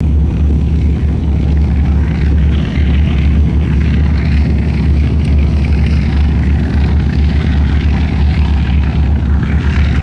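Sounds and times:
distant vintage propeller airplane taxiing: 0:00.0 - 0:10.0.

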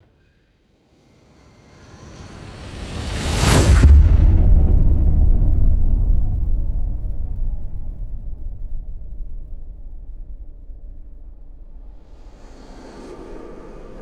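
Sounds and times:
cinematic whoosh: 0:02.2 - 0:14.0
deep metallic impact: 0:03.7 - 0:14.0.

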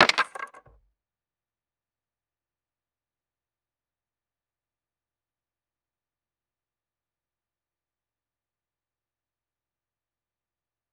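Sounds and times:
small wooden pieces dropping and clattering: 0:00.0 - 0:00.7.

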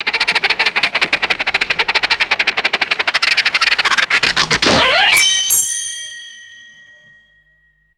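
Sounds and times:
rhythmic rubbery cartoon squeaks: 0:00.0 - 0:07.2
cartoon metallic clang: 0:04.7 - 0:07.9.

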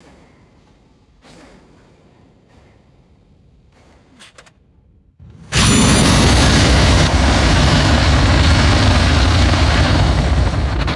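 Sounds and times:
heavy metallic aircraft fuselage vibration bursts: 0:05.5 - 0:10.9.

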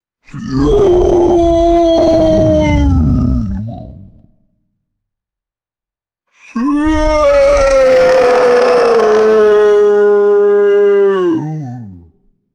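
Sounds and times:
guttural humanoid creature wailing in pain: 0:00.4 - 0:03.6, 0:06.6 - 0:11.8.

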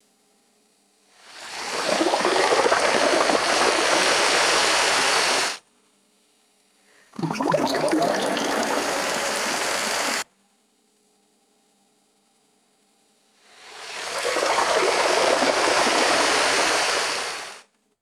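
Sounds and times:
short bursts of gurgling water swooshes: 0:01.3 - 0:05.6, 0:07.2 - 0:10.2, 0:13.7 - 0:17.6.

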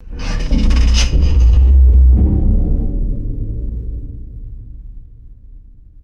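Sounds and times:
loud resonant metallic scrape and vibration: 0:00.0 - 0:03.3.

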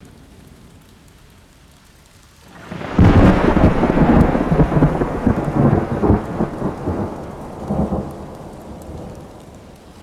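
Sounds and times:
light rain: 0:00.0 - 0:10.0
deep rolling thunder: 0:02.6 - 0:10.0.

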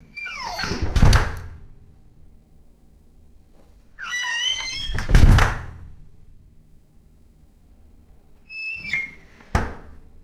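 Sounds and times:
squeaky glass shower door opening and closing: 0:00.2 - 0:01.7, 0:04.0 - 0:05.9, 0:08.5 - 0:09.6.

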